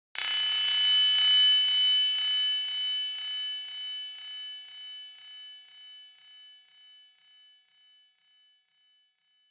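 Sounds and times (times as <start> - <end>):
tinnitus ringing tone: 0.2 - 9.4.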